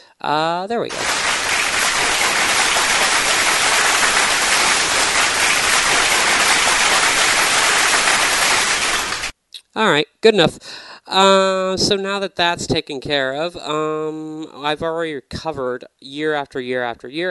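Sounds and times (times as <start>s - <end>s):
speech: 0.2s - 1.3s, 9.8s - 17.2s
dense crowd applause: 0.9s - 9.3s.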